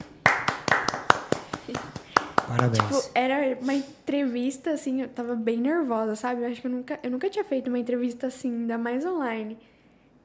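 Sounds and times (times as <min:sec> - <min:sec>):
hand claps: 0:00.0 - 0:03.1
speech: 0:02.5 - 0:10.2.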